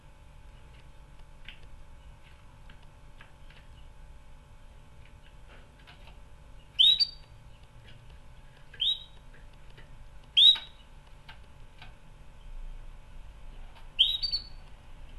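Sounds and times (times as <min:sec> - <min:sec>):
canary short sharp rising chirps: 0:06.6 - 0:07.6, 0:08.7 - 0:09.2, 0:10.4 - 0:10.9, 0:14.0 - 0:14.6.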